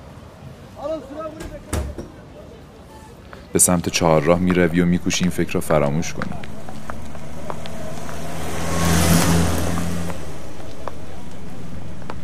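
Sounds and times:
street ambience: 0.0 - 12.2
speech: 0.8 - 1.8, 3.5 - 6.6
bus engine rumbling and revving as it approaches: 3.7 - 12.2.

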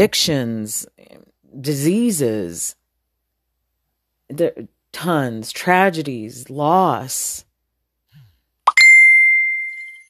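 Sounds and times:
speech: 0.0 - 0.9, 1.6 - 2.8, 4.3 - 7.5
phone notification alert with soft pop and bright chime: 8.7 - 10.0.

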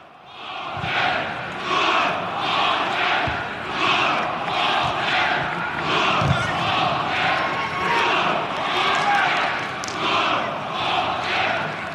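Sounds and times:
football stadium crowd call-and-response chant with supporters shouting: 0.0 - 11.9.

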